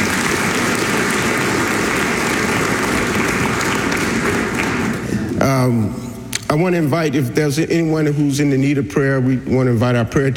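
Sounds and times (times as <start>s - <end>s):
large group applauding: 0.0s - 5.4s
speech: 5.5s - 10.3s.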